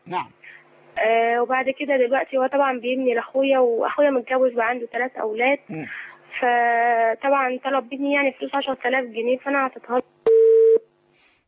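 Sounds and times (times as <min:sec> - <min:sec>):
speech: 0:00.1 - 0:10.1
telephone tone as a call drops: 0:10.3 - 0:10.8.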